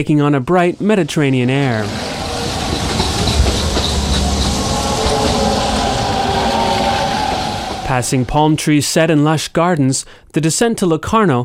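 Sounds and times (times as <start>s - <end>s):
speech: 0.0s - 2.2s, 7.9s - 11.4s
train rumbling across a high steel bridge: 0.7s - 8.9s
train wheels clattering on a steel bridge: 1.6s - 8.5s.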